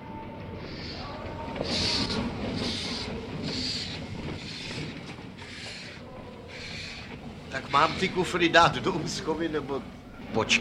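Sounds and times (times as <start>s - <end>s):
train rumbling while slowing to a halt at a station: 0.0s - 10.5s
high squealing hisses of a train: 0.6s - 8.8s
speech: 7.7s - 10.5s.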